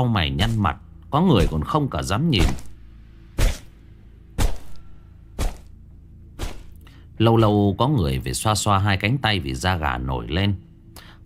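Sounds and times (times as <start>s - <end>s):
speech: 0.0s - 2.7s, 7.2s - 10.7s
stick striking a leg with heavy dull thuds: 2.4s - 2.8s, 4.4s - 4.8s, 5.4s - 5.7s, 6.4s - 6.8s.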